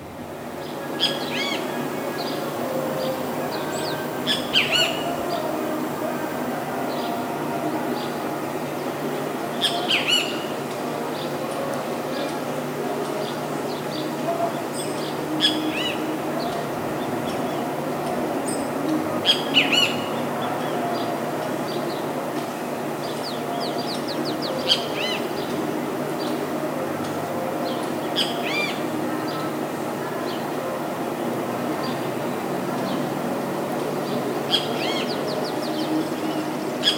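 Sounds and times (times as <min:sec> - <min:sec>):
steady hum: 0:00.0 - 0:36.9
great kiskadee tyrant flycatcher calling in Oaxaca city: 0:00.6 - 0:05.6, 0:09.3 - 0:11.4, 0:13.2 - 0:22.2, 0:22.9 - 0:25.6, 0:27.6 - 0:30.5, 0:34.0 - 0:36.9.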